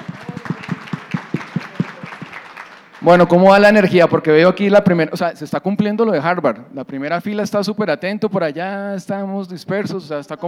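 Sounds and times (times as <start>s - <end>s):
small audience clapping in a brisk rhythm: 0.0s - 3.4s
speech: 3.0s - 10.4s.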